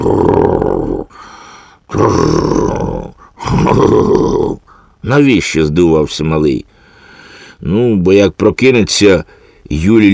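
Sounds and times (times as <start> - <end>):
speech: 0.0 - 0.5, 1.9 - 2.8, 3.7 - 6.7, 7.6 - 10.1
voice imitating loud snoring: 0.0 - 1.2, 1.9 - 4.8.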